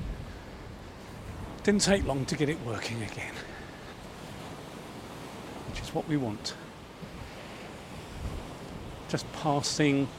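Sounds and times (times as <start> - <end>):
surf roaring by the sea: 0.0 - 10.1
wind by the sea: 0.0 - 10.1
speech: 1.6 - 3.6, 5.8 - 6.6, 9.1 - 10.1.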